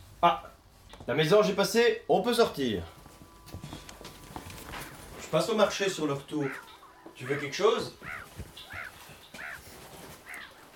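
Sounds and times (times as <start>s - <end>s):
steady outdoor hiss: 0.0s - 10.7s
speech: 0.2s - 3.0s, 5.3s - 8.2s
seagulls calling: 4.1s - 10.7s.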